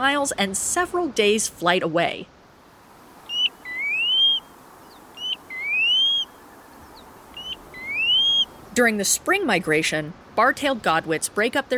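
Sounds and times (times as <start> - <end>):
speech: 0.0 - 2.4, 8.8 - 11.7
soft background noise: 0.0 - 11.7
Pacific Golden-Plover calls: 3.2 - 9.7.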